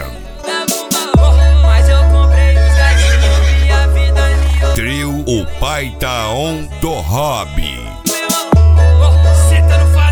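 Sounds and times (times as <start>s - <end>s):
electronic music with sustained bass drone: 1.2s - 10.1s
horse whinnying: 2.6s - 3.9s
speech: 5.6s - 7.8s.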